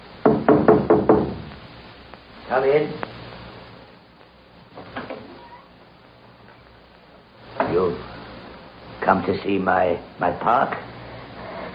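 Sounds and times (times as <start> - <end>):
firm knocks on the wooden door of a caretaker's cottage: 0.2 - 1.5
speech: 2.5 - 3.1, 9.1 - 10.9.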